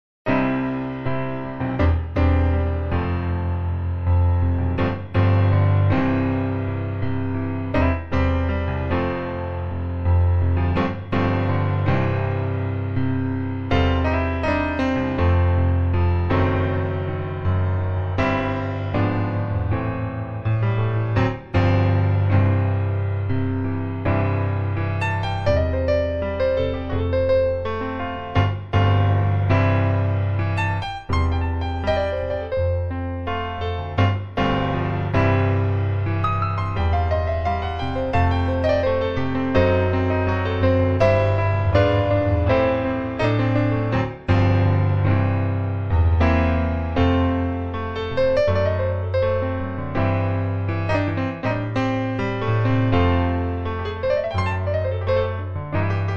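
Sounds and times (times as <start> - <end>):
grand piano note C5: 0.3 - 56.1.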